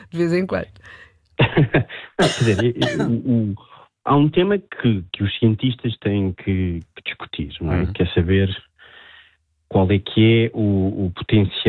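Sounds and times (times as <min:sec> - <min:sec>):
speech: 0:00.1 - 0:08.7, 0:09.7 - 0:11.6
woman coughing: 0:01.4 - 0:03.2.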